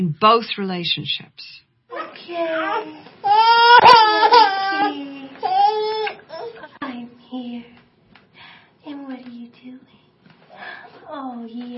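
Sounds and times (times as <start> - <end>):
speech: 0.0 - 1.6, 2.2 - 5.1
baby crying and whimpering: 1.9 - 6.7.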